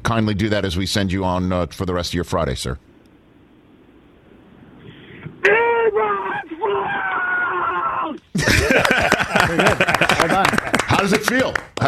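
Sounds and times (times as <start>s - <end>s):
speech: 0.1s - 2.9s, 11.0s - 11.8s
man screaming a single drawn-out word: 5.4s - 8.3s
laughter: 8.3s - 11.3s.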